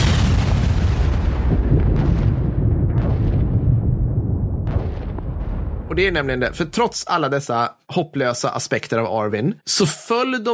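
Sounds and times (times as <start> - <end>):
sharp blasts: 0.0 - 6.9
continuous rumbling explosions with heavy low-end booms: 0.0 - 7.1
speech: 6.0 - 10.5.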